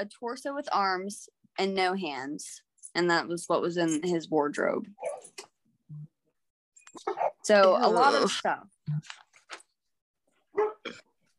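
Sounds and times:
speech: 0.0 - 6.1, 6.9 - 9.2
dogs barking: 10.5 - 10.8.

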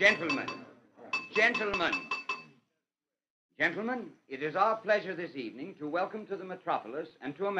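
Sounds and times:
speech: 0.0 - 0.7, 1.4 - 2.2, 3.6 - 7.5
spoon tapping against a glass: 0.0 - 2.6.

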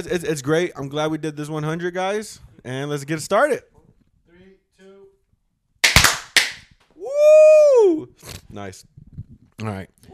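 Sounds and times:
speech: 0.0 - 3.7, 7.9 - 9.0, 9.6 - 10.1
party poppers popping at a desk: 5.8 - 6.7.

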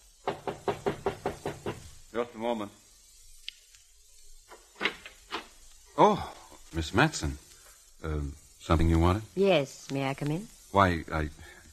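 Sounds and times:
knocking on a wooden hotel room door: 0.2 - 1.9
speech: 2.2 - 2.8, 6.0 - 7.4, 8.0 - 11.6.

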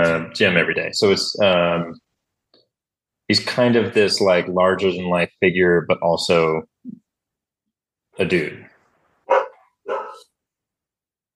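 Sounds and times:
speech: 0.2 - 2.0, 3.3 - 7.0, 8.2 - 8.7, 9.3 - 10.0
dog barking: 9.2 - 10.3.

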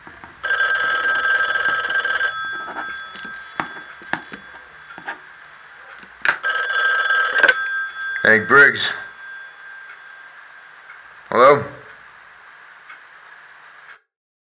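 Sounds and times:
sharp wooden knocks and clicks: 0.0 - 6.5
telephone bell ringing: 0.0 - 14.0
speech: 8.2 - 9.0.

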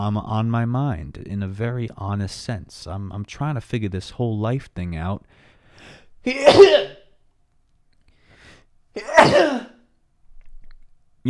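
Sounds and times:
speech: 0.0 - 6.9
loud sneezes: 6.3 - 7.1, 9.0 - 9.8.

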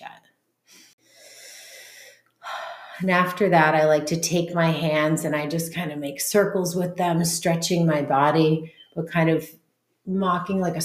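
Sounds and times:
deep airy breathing during a seated meditation: 0.7 - 3.0
speech: 3.0 - 10.8.

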